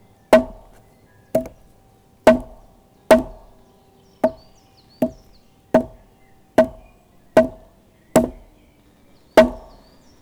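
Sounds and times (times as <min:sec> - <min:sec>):
low wooden tom hits from a club on a log: 0:00.4 - 0:00.8, 0:01.4 - 0:01.7, 0:02.3 - 0:03.6, 0:04.2 - 0:08.6, 0:09.4 - 0:09.9.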